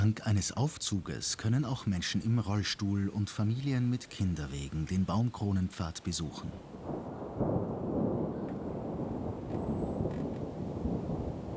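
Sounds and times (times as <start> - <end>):
speech: 0.0 - 7.6
distant thunder of an approaching thunderstorm in a leafy deciduous forest: 6.7 - 11.5.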